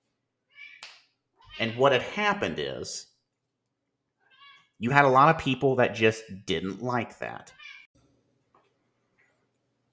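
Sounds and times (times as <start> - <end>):
house cat meowing in a home recording studio: 0.5 - 0.8, 4.3 - 4.7, 7.5 - 7.9
speech: 1.6 - 3.1, 4.8 - 7.7.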